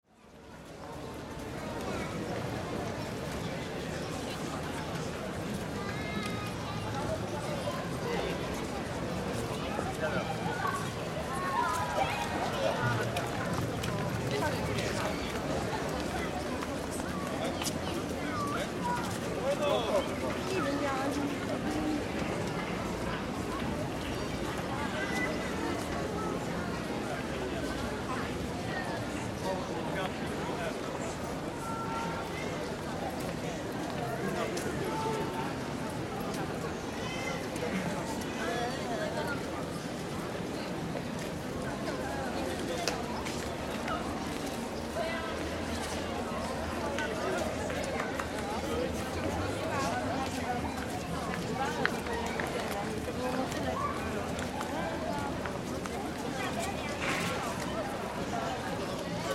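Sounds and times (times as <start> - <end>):
mid-afternoon pedestrian crowd in Warsaw Old Town: 0.0 - 59.3.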